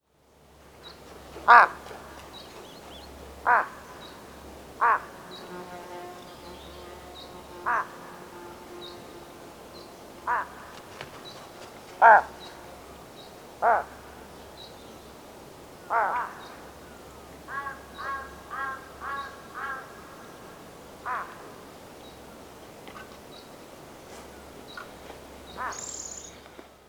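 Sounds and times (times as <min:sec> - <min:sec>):
large-billed crow Corvus macrorhynchos calling: 0:01.4 - 0:02.4, 0:03.4 - 0:04.2, 0:04.8 - 0:05.4, 0:07.6 - 0:08.1, 0:10.2 - 0:11.0, 0:12.0 - 0:12.6, 0:13.6 - 0:14.2, 0:15.8 - 0:21.6, 0:25.5 - 0:26.4.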